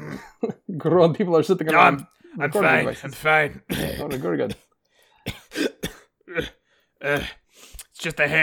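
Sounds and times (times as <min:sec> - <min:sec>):
speech: 0:00.2 - 0:05.7, 0:06.3 - 0:07.4, 0:08.0 - 0:08.4
person coughing harshly: 0:03.7 - 0:04.7, 0:05.3 - 0:07.4.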